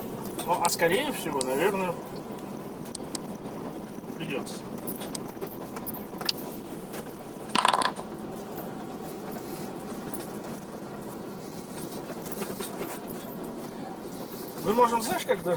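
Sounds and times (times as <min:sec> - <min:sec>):
low hum: 0:00.0 - 0:15.5
speech: 0:00.5 - 0:02.5, 0:04.3 - 0:05.6, 0:14.7 - 0:15.5
dice being rolled: 0:07.5 - 0:08.1.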